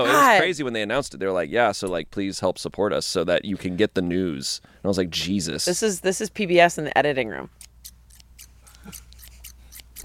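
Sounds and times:
speech: 0:00.0 - 0:07.7
scissors cutting a strip: 0:07.6 - 0:10.0.

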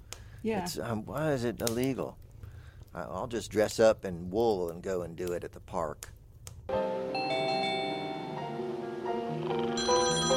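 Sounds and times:
speech: 0:00.4 - 0:02.2, 0:02.9 - 0:06.9, 0:09.4 - 0:10.3
melodic electronic phone ringtone: 0:07.2 - 0:08.6, 0:09.7 - 0:10.3.

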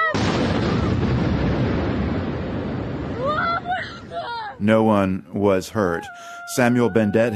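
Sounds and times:
explosion from drone strike with roaring rumble: 0:00.1 - 0:04.2
speech: 0:04.6 - 0:07.3
frightened voice wailing and crying out: 0:05.7 - 0:07.3.

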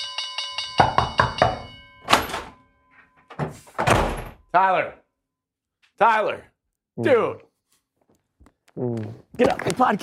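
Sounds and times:
bell ringing: 0:00.0 - 0:03.3
speech: 0:04.5 - 0:05.0, 0:06.0 - 0:07.5, 0:08.8 - 0:10.0.

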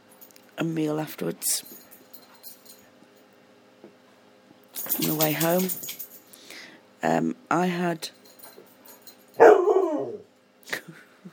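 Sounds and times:
speech: 0:00.6 - 0:01.8, 0:05.1 - 0:06.0, 0:07.0 - 0:08.2
dog barking: 0:09.4 - 0:10.2.

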